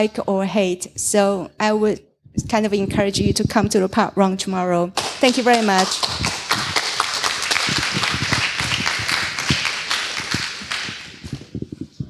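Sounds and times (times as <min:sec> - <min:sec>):
speech: 0:00.0 - 0:06.3
small audience clapping after a lightning talk: 0:05.0 - 0:11.6.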